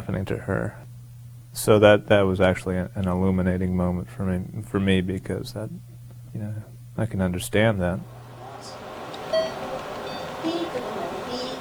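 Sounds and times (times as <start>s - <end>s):
speech: 0.0s - 0.9s, 1.5s - 8.8s
faint murmuring voices in a busy room: 8.4s - 11.5s
short electronic beeps: 9.3s - 10.4s.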